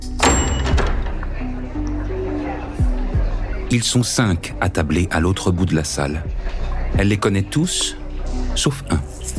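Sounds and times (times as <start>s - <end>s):
brief bright ring of a restaurant door: 0.0s - 1.3s
restaurant door pushed open with a solid thunk: 0.1s - 1.4s
murmur of voices in a restaurant: 0.9s - 9.3s
speech: 3.7s - 8.0s, 8.6s - 9.3s.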